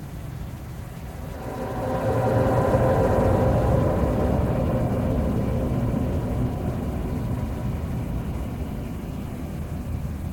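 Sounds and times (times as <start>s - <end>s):
unsettling noises: 0.1s - 10.1s.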